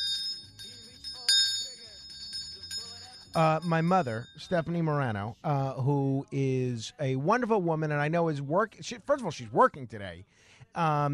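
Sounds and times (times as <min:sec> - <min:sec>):
hand bell rung for a donor during a fundraiser: 0:00.0 - 0:04.7
speech: 0:03.4 - 0:11.1.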